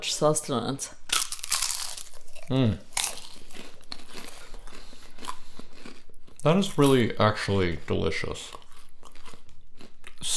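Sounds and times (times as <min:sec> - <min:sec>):
speech: 0:00.0 - 0:01.0, 0:02.5 - 0:02.9, 0:06.4 - 0:08.6
Marmite-coated rice cakes being bitten and chewed: 0:01.1 - 0:10.3.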